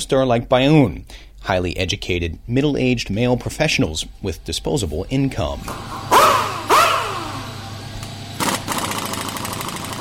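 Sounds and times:
speech: 0:00.0 - 0:06.1
motorcycle engine revving and idling: 0:05.6 - 0:09.9.

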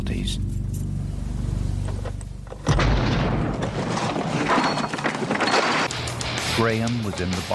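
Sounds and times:
low car engine hum: 0:00.0 - 0:02.6
speech: 0:00.2 - 0:00.6, 0:06.6 - 0:07.5
roaring crackling rumble of debris: 0:01.9 - 0:07.5
car bomb planted under the driver's seat exploding: 0:02.6 - 0:05.9.

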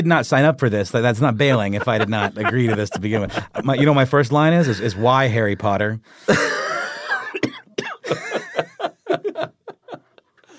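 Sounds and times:
speech: 0:00.0 - 0:06.6
laughter: 0:01.2 - 0:07.4, 0:08.0 - 0:10.3
person having a coughing fit: 0:06.3 - 0:08.6.

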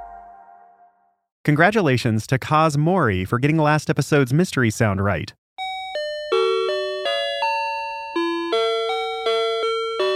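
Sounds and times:
speech: 0:01.5 - 0:05.4
Japanese convenience store entrance door chime melody: 0:05.6 - 0:10.1.

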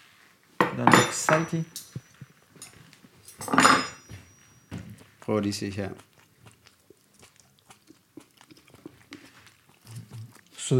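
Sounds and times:
cutlery clinking and scraping against a plate: 0:00.6 - 0:05.0
speech: 0:00.8 - 0:01.8, 0:05.3 - 0:06.1.

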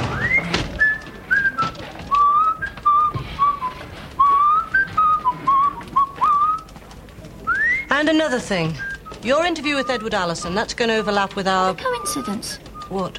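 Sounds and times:
faint noise: 0:00.0 - 0:13.1
person whistling a wandering melody: 0:00.1 - 0:06.7, 0:07.5 - 0:07.9, 0:08.6 - 0:10.1, 0:11.8 - 0:13.1
speech: 0:08.0 - 0:13.1.

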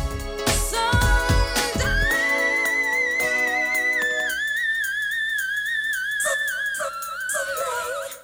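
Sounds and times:
soft backing music: 0:00.0 - 0:04.6
short burst of instrumental music: 0:00.0 - 0:08.2
singer's very high whistle-register note: 0:01.8 - 0:08.2.

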